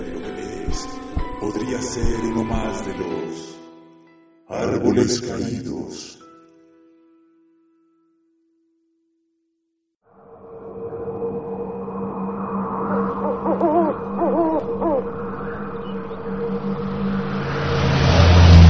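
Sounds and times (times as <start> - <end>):
speech: 1.6 - 3.6, 4.5 - 6.2
red car engine drone on a tree-lined highway: 10.6 - 18.6
road rumble on a tree-lined highway: 12.6 - 18.6.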